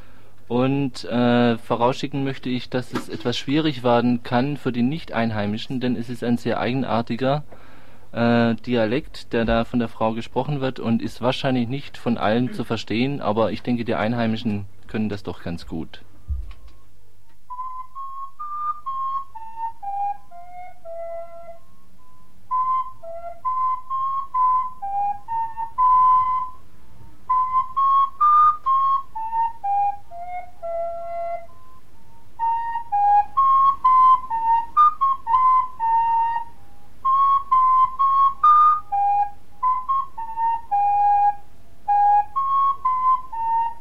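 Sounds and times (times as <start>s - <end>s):
speech: 0.5s - 16.1s
person whistling a slow solemn hymn tune: 17.5s - 43.7s.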